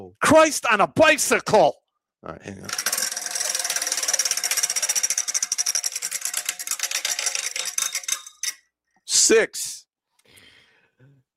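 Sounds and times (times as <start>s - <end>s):
speech: 0.0s - 2.9s, 9.3s - 9.8s
white prize wheel spinning with its pointer clicking: 2.7s - 8.6s.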